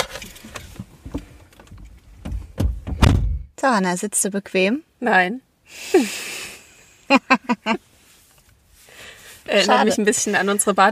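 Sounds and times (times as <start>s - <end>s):
heavy thuds of a door being pushed shut: 2.2s - 3.5s
speech: 3.6s - 6.3s, 7.1s - 7.8s, 9.5s - 10.9s
laughter: 7.1s - 7.8s.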